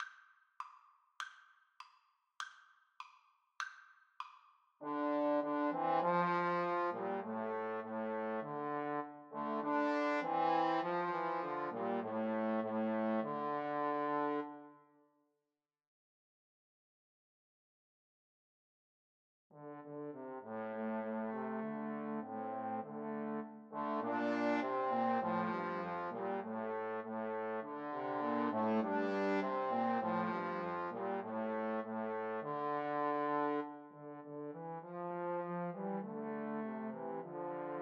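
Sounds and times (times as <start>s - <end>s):
trombone trio playing: 4.8s - 14.4s, 19.6s - 37.8s.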